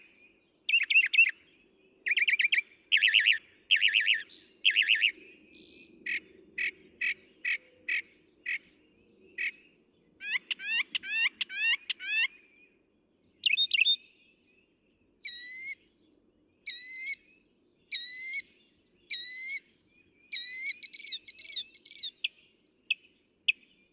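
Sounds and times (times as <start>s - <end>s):
Northern mockingbird singing: 0.7s - 1.4s, 2.1s - 8.7s, 10.2s - 12.5s, 13.4s - 14.1s, 15.2s - 15.8s, 16.7s - 23.9s.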